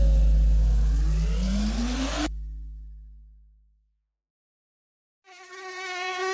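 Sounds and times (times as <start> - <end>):
car engine revving: 0.0 - 3.0
wavering mosquito buzz: 5.3 - 6.3.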